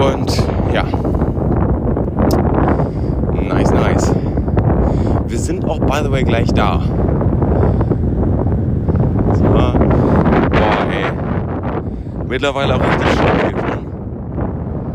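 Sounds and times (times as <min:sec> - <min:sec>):
heavy wind buffeting a microphone while cycling downhill: 0:00.0 - 0:14.9
speech: 0:05.9 - 0:07.0, 0:12.3 - 0:13.6.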